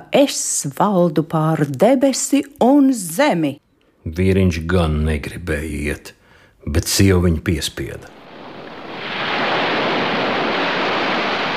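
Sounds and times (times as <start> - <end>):
speech: 0.0 - 8.2
stormy sea waves: 8.1 - 11.5
wind: 8.1 - 11.5.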